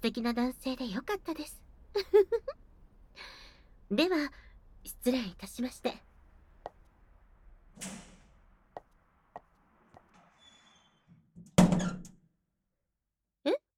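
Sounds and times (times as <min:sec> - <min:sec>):
speech: 0:00.0 - 0:02.6, 0:03.9 - 0:06.1, 0:07.8 - 0:08.1
front door creaky squeak: 0:07.6 - 0:08.7, 0:09.7 - 0:12.2
front door swinging shut: 0:07.7 - 0:08.6, 0:10.0 - 0:12.2.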